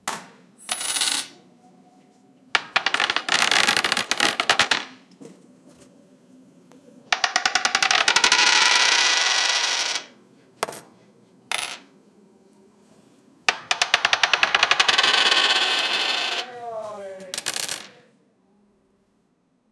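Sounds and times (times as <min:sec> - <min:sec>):
coin flip into the air: 0:00.6 - 0:01.3, 0:02.6 - 0:04.9, 0:07.1 - 0:10.9, 0:11.5 - 0:11.9, 0:13.5 - 0:16.5, 0:17.2 - 0:18.0.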